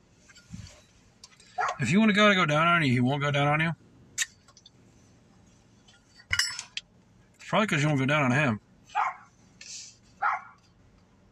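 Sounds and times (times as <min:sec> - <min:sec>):
small dog yapping across the street: 0:01.6 - 0:01.8, 0:09.0 - 0:09.3, 0:10.2 - 0:10.6
speech: 0:01.8 - 0:03.8, 0:07.5 - 0:09.0.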